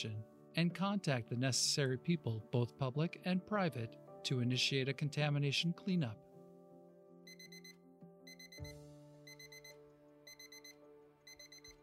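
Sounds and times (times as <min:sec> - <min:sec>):
speech: 0:00.0 - 0:06.2
phone alarm with high electronic beeps: 0:07.3 - 0:11.8.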